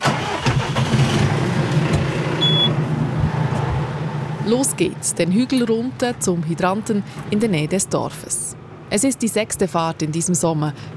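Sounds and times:
tractor diesel engine hitched to a trailer with water tanks starting and running: 0:00.0 - 0:05.9
speech: 0:04.5 - 0:10.9.

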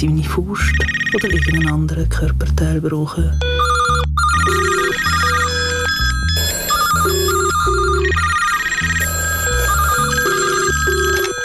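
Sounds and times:
speech: 0:00.0 - 0:04.6
telephone ringing with a melodic tone: 0:00.8 - 0:01.8, 0:03.4 - 0:11.4.

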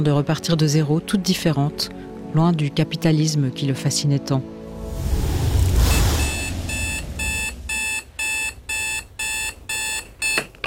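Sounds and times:
speech: 0:00.0 - 0:05.3
soft rushing swell: 0:04.6 - 0:08.8
alarm clock electronic beeping: 0:06.4 - 0:10.5.

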